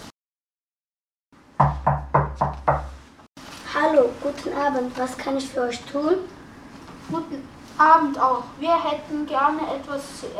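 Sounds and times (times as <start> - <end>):
knocking on a wooden inn door in Bethlehem: 1.6 - 3.0
speech: 3.9 - 6.4, 7.1 - 10.3.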